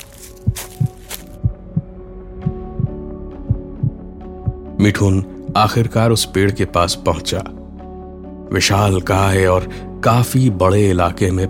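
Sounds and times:
man's steady heartbeat as he walks: 0.0s - 4.7s
speech: 4.8s - 7.6s, 8.5s - 11.4s.

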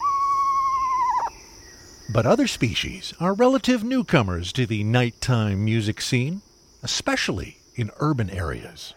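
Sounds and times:
owl hooting at night: 0.0s - 1.6s
faint hiss: 0.0s - 8.9s
speech: 2.1s - 8.9s.

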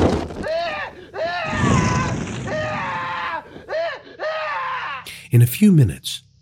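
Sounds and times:
man screaming in agony while burning alive: 0.4s - 5.1s
low roaring rumble of flames burning around a man: 1.4s - 3.3s
speech: 5.3s - 6.3s.

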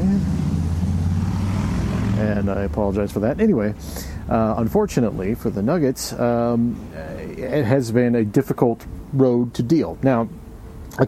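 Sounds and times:
motorcycle engine passing by: 0.0s - 5.8s
speech: 2.2s - 11.0s.

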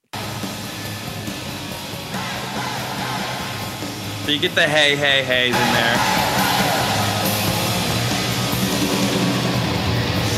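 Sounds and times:
classic arena rock song through stadium speakers: 0.2s - 10.3s
dense roar of stadium crowd noise: 2.1s - 4.2s, 5.4s - 9.7s
speech: 4.3s - 6.2s.

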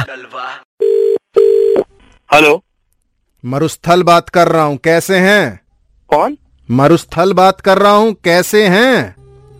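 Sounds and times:
speech: 0.1s - 0.7s, 2.3s - 2.7s, 3.4s - 9.2s
telephone line tones while placing a call: 0.8s - 1.9s.

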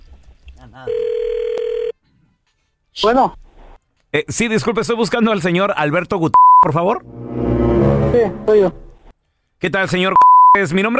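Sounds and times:
speech: 0.6s - 1.2s, 3.0s - 3.4s, 4.1s - 7.2s, 8.1s - 8.8s, 9.6s - 10.9s
telephone ringback tone after a call is dialed: 0.9s - 1.9s.

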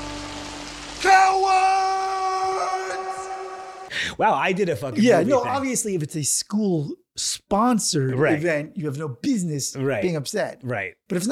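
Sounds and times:
person imitating an anguished movie-style scream: 1.0s - 3.9s
speech: 4.1s - 11.3s.

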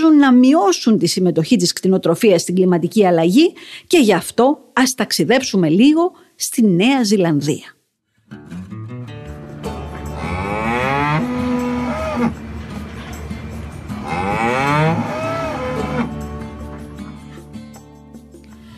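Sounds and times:
speech: 0.2s - 7.8s
cows grazing on green grass in New Zealand mooing: 10.1s - 12.4s, 14.0s - 16.3s.

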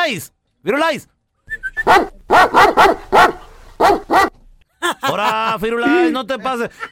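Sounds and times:
speech: 0.1s - 4.2s, 5.0s - 6.9s
dog barking: 1.8s - 4.4s
laughter: 4.7s - 6.9s.

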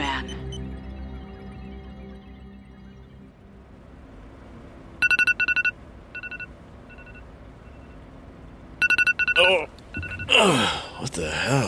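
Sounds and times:
mobile phone alarm with quick bright electronic beeps: 5.0s - 8.0s, 8.8s - 10.4s
speech: 9.5s - 9.8s, 10.4s - 11.6s.

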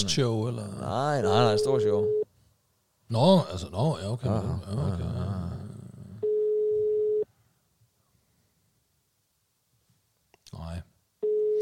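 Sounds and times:
speech: 0.0s - 2.2s, 3.1s - 5.4s
phone call ringing tone: 1.3s - 2.2s, 6.2s - 7.3s, 11.2s - 11.5s.

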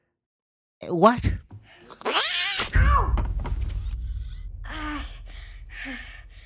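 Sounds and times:
speech: 0.8s - 1.4s
cat yowling and hissing while scratching a person: 2.0s - 2.8s
low rumbling background: 2.8s - 6.4s.

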